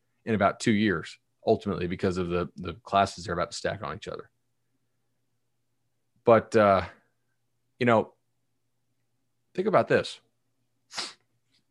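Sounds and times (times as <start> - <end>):
speech: 0.2 - 4.3, 6.3 - 7.0, 7.8 - 8.2, 9.6 - 10.2, 10.9 - 11.2
person sneezing: 10.9 - 11.2.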